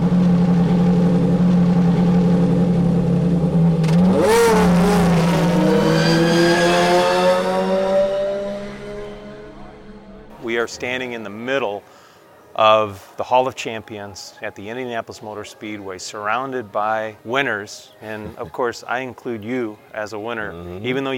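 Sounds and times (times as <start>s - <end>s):
racing engines idling and revving high with a harmonic whine: 0.0s - 10.4s
speech: 10.7s - 11.9s, 12.6s - 21.1s.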